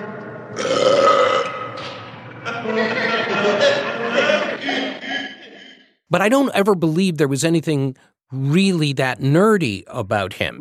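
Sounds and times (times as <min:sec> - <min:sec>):
loud drawn-out raspy belch: 0:00.6 - 0:01.9
laughter: 0:02.4 - 0:05.6
speech: 0:06.1 - 0:10.5.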